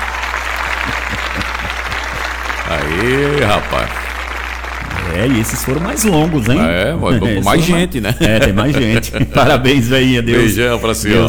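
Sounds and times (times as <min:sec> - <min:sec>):
group applauding at a birthday celebration: 0:00.0 - 0:07.8
laughter: 0:00.0 - 0:11.2
speech: 0:02.7 - 0:04.0, 0:05.1 - 0:11.2.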